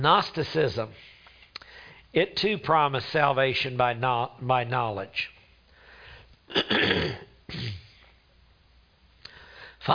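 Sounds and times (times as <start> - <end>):
speech: 0.0 - 1.2, 2.1 - 5.4, 6.5 - 7.8
person clearing their throat: 6.5 - 8.2.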